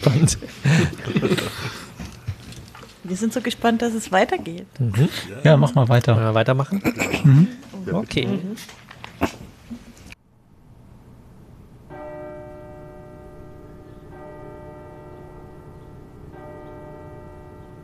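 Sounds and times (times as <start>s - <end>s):
speech: 0.0s - 1.8s, 3.1s - 9.4s
laughter: 0.0s - 2.1s, 6.6s - 7.6s
steady noise: 0.0s - 17.8s
tower clock bell striking the hour: 11.9s - 17.8s.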